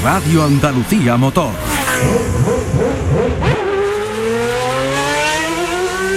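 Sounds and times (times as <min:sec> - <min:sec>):
speech: 0:00.0 - 0:02.4
Formula 1 race cars accelerating at the race start: 0:00.0 - 0:06.1.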